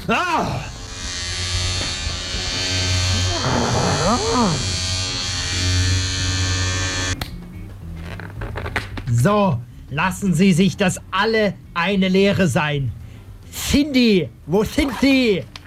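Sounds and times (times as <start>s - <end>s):
speech: 0.0s - 0.7s, 3.4s - 4.7s, 9.1s - 13.0s, 13.7s - 15.6s
loud electric razor shaving hair in a hair salon: 0.6s - 7.2s.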